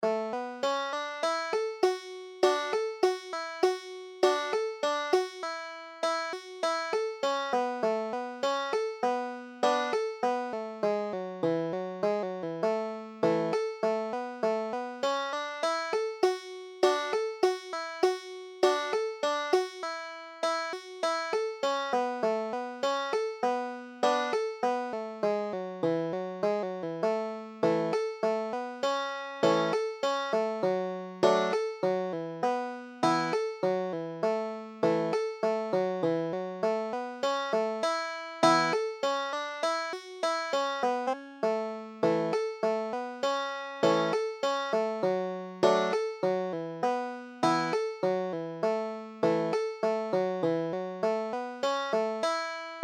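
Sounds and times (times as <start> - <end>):
banjo playing: 0.0 - 52.8.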